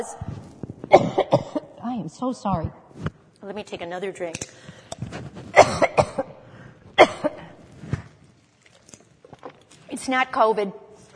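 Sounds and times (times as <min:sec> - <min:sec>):
speech: 0:00.0 - 0:01.5, 0:02.1 - 0:05.8, 0:10.1 - 0:10.8
dry harsh coughing from a tickle in the throat: 0:00.9 - 0:01.7, 0:05.5 - 0:06.4, 0:07.0 - 0:07.6.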